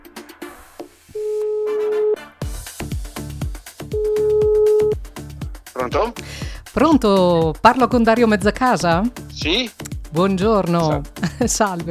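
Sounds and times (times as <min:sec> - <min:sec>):
music with sharp percussive hits: 0:00.0 - 0:01.2, 0:02.2 - 0:11.8
ringback tone of an outgoing phone call: 0:01.2 - 0:02.2, 0:03.9 - 0:05.0
speech: 0:05.8 - 0:11.8.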